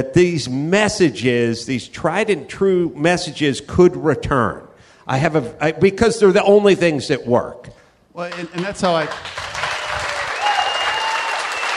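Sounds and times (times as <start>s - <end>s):
speech: 0.0s - 9.4s
crowd applauding: 8.2s - 11.7s.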